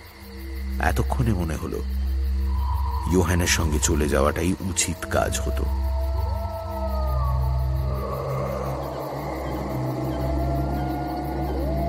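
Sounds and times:
steady low rumbling drone: 0:00.0 - 0:11.8
speech: 0:00.8 - 0:02.0, 0:03.1 - 0:05.8
pack of dogs or wolves howling on a snowy night as a storm builds: 0:02.4 - 0:11.8.

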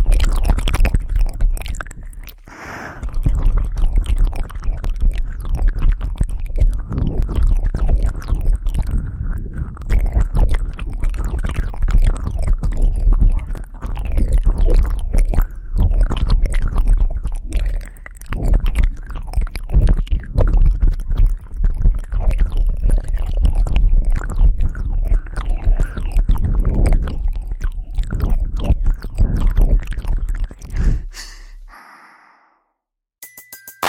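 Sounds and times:
wet mouth smacks, licks and clicks against the microphone: 0:00.0 - 0:32.4
faint breathing: 0:02.5 - 0:03.1, 0:30.7 - 0:32.7.

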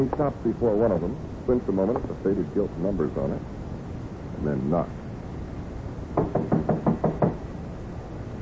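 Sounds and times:
speech: 0:00.0 - 0:03.6, 0:04.4 - 0:05.0
knocking on a warped dark-stained wooden door in a hallway: 0:06.2 - 0:07.4.

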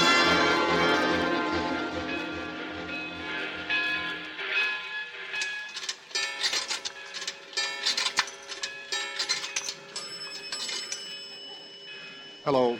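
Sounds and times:
steady high whine of moving rail cars: 0:00.0 - 0:06.2
train bound for Chicago pulling away from a station: 0:00.0 - 0:08.0
rhythmic clacking of train: 0:00.0 - 0:12.7
speech: 0:12.5 - 0:12.7.

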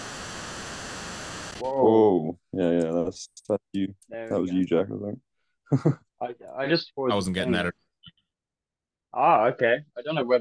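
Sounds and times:
white noise hiss: 0:00.0 - 0:01.6
speech: 0:01.6 - 0:08.2, 0:09.1 - 0:10.3.

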